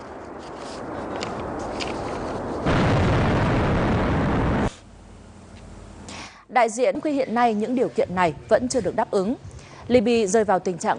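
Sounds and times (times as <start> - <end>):
rumbling noise: 0.0 - 6.0
speech: 6.6 - 10.9.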